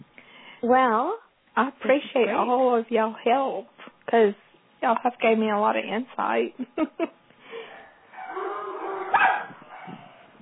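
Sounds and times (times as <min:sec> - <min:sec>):
speech: 0:00.6 - 0:07.2
dogs barking and yipping: 0:07.7 - 0:10.4.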